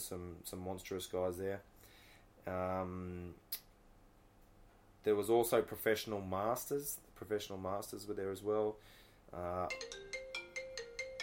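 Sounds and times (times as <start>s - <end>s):
speech: 0.0s - 1.7s, 2.4s - 3.7s, 5.0s - 10.1s
mobile phone ringtone with a bright electronic melody of chiming notes: 9.7s - 11.2s.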